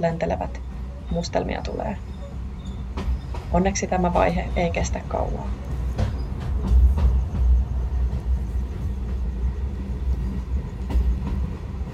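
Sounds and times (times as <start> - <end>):
speech: 0.0 - 2.1, 3.0 - 5.7
passenger train in Tanzania rumbling along the tracks: 0.0 - 11.9.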